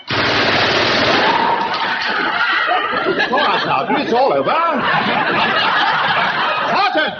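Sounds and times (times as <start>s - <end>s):
gun firing during a military demonstration: 0.0s - 1.7s
laughter: 1.4s - 7.1s
speech: 3.7s - 5.5s.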